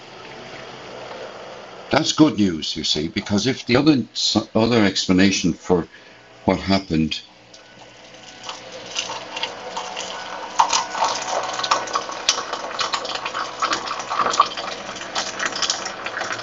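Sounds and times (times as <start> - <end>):
speech: 1.9 - 7.3
boiled water poured into a cup holding a plain tea bag: 7.8 - 16.4.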